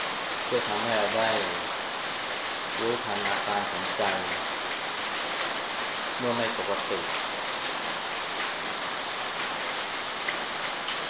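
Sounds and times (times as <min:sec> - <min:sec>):
rain falling on a roof: 0:00.0 - 0:11.0
speech: 0:00.5 - 0:01.7, 0:02.8 - 0:04.5, 0:06.2 - 0:07.2.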